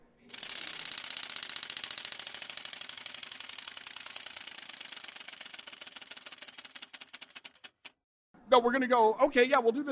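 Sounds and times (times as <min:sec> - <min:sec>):
prize wheel spinning and clicking: 0:00.3 - 0:08.0
speech: 0:08.5 - 0:09.9.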